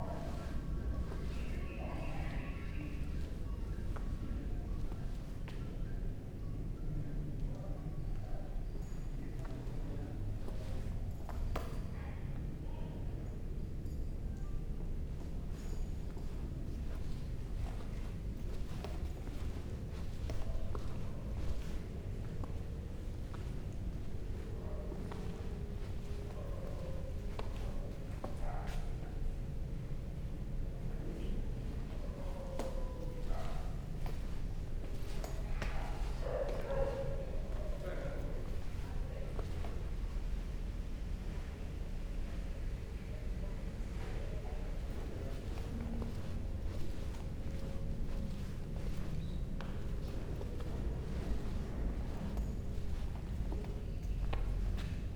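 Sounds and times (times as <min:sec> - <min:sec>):
museum interior ambience in Bali Indonesia: 0:00.0 - 0:55.1
footsteps walking inside a museum in Bali Indonesia: 0:15.8 - 0:28.8, 0:31.7 - 0:40.5, 0:44.6 - 0:55.1.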